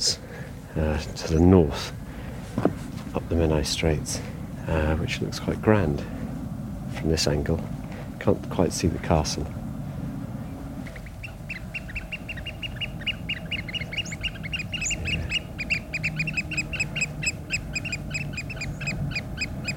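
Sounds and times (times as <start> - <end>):
low rumble of wind or water: 0.0 - 19.7
speech: 0.8 - 2.0, 2.6 - 6.2, 7.0 - 9.6
oystercatchers piping shrill repeated calls by a bay off the Menai Straits: 10.4 - 19.7.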